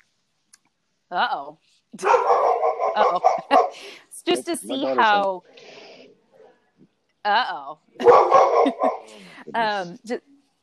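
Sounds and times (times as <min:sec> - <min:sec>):
speech: 0:01.1 - 0:05.8, 0:07.2 - 0:10.3
hypervigilant dog barking and yelping: 0:02.0 - 0:03.8, 0:08.0 - 0:09.1
laughter: 0:03.0 - 0:05.2, 0:08.0 - 0:09.8.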